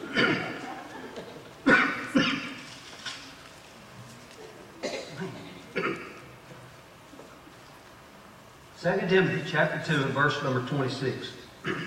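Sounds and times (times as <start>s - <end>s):
preacher coughing: 0.0s - 0.6s, 1.6s - 2.6s, 4.8s - 6.2s, 11.6s - 11.8s
preacher clearing throat: 0.0s - 0.7s, 1.6s - 2.6s, 4.8s - 6.3s, 11.6s - 11.8s
laughter: 0.0s - 1.6s
speech: 8.8s - 11.8s.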